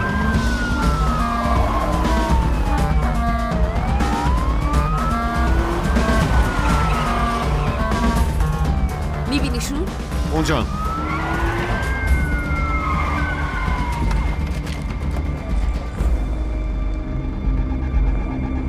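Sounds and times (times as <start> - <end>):
police car siren wailing up and down: 0.0 - 14.5
police car engine roaring: 0.0 - 18.6
tires: 0.0 - 18.6
speech: 10.5 - 10.8.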